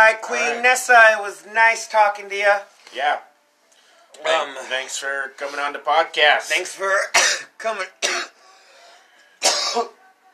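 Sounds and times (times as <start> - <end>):
speech: 0.1 - 3.3, 4.2 - 8.4, 9.7 - 10.0
harsh hacking cough after taking a big dab: 7.0 - 8.4, 9.4 - 10.3.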